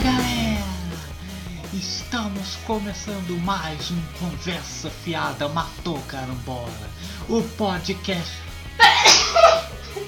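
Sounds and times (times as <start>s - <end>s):
speech: 1.7s - 9.2s
single loud sneeze: 8.8s - 9.7s
laughter: 8.8s - 10.0s.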